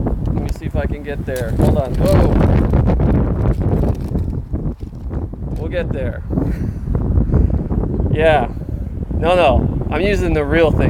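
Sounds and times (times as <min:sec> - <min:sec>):
wind buffeting a microphone outdoors: 0:00.0 - 0:10.8
speech: 0:00.6 - 0:03.9, 0:05.6 - 0:06.8, 0:08.2 - 0:08.6, 0:09.2 - 0:10.8.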